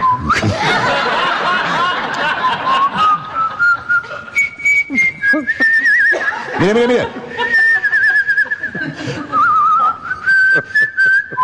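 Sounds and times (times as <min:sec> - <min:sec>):
person whistling a tune: 0:00.0 - 0:00.5, 0:02.4 - 0:06.3, 0:07.4 - 0:11.4
short snickers: 0:00.1 - 0:11.4
laughter: 0:00.2 - 0:04.4, 0:05.0 - 0:11.4
speech: 0:06.6 - 0:07.2.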